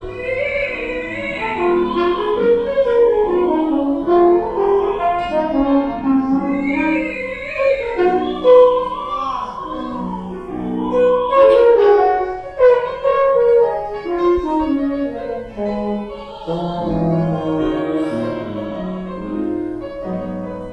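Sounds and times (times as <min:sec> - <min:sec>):
jazz horn: 0:00.0 - 0:20.7.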